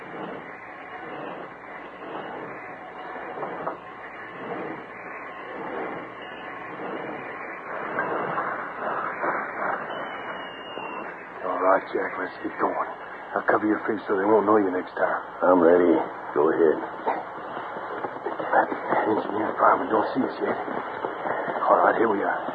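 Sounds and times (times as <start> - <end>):
work train rolling to a stop along a siding: 0.0 - 22.5
speech: 11.8 - 17.0, 19.1 - 20.8, 21.7 - 22.5.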